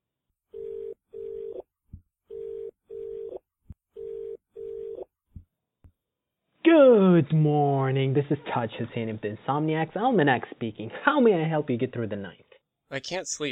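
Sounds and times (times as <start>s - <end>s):
telephone ringing tone on a line being dialed: 0.5s - 1.7s, 2.3s - 3.4s, 4.0s - 5.1s
speech: 6.9s - 13.5s.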